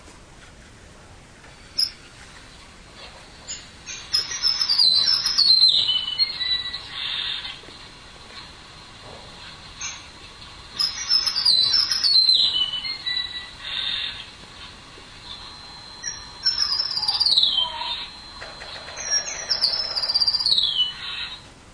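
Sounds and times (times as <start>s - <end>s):
sparrow singing: 3.5s - 7.4s, 10.8s - 13.5s, 16.0s - 18.1s, 19.0s - 21.2s.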